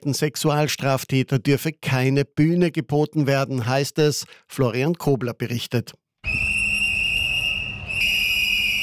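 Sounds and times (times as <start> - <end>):
speech: 0.0 - 6.5
protesters blowing shrill whistles: 6.2 - 8.8.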